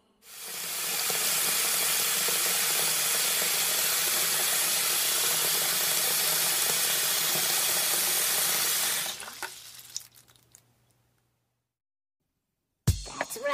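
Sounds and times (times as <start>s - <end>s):
balloon filling from a running tap: 0.3s - 10.6s.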